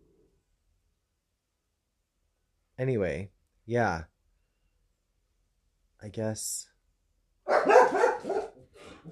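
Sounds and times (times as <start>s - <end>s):
speech: 2.8s - 4.1s, 6.0s - 6.7s, 7.5s - 8.0s
dogs barking: 7.5s - 8.6s.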